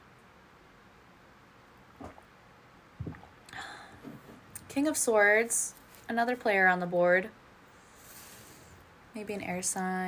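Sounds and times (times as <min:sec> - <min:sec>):
person drinking water with gulps and swallows: 0:02.0 - 0:02.3, 0:03.0 - 0:04.4
breaths: 0:03.5 - 0:04.2, 0:07.7 - 0:08.9
speech: 0:04.8 - 0:07.4, 0:09.2 - 0:10.0.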